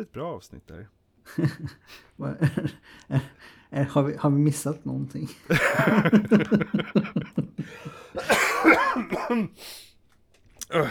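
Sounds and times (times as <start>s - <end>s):
speech: 0.0s - 9.9s, 10.7s - 10.9s
laughter: 1.3s - 3.4s, 5.5s - 8.7s
coughing and throat clearing: 8.2s - 9.6s.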